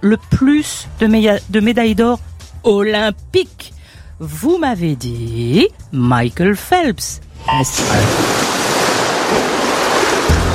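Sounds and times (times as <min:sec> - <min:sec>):
speech: 0:00.0 - 0:08.3
rushing water with a surf-like wash: 0:07.2 - 0:10.5.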